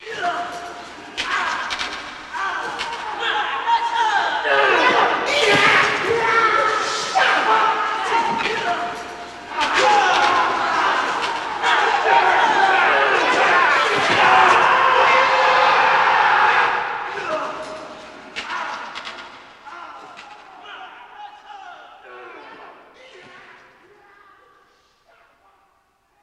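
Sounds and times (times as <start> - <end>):
boxing: 0.0 - 21.0
fight crowd walla: 0.0 - 25.8.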